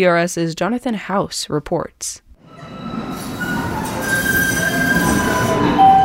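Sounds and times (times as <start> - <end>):
speech: 0.0 - 2.2
light rail train rumbling at Harvard Ave in Allston: 2.4 - 6.0.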